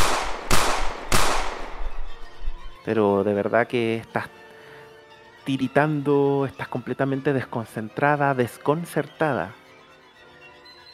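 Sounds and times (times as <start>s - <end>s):
booming gunshots from a large gun: 0.0s - 2.3s
steady noise: 0.0s - 2.8s
speech: 2.8s - 4.4s, 5.5s - 9.6s.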